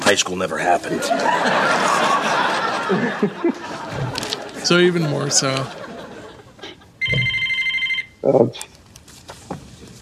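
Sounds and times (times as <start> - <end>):
speech: 0.1 - 5.8, 8.2 - 8.7
laughter: 0.8 - 7.0
house telephone ringing: 7.0 - 8.2.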